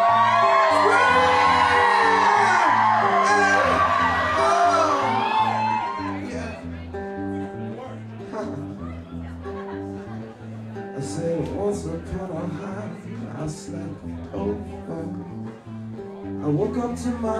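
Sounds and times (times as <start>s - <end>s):
crowd screaming and whooping: 0.0s - 7.0s
laughter: 0.0s - 11.3s
steady musical backing: 0.0s - 17.3s.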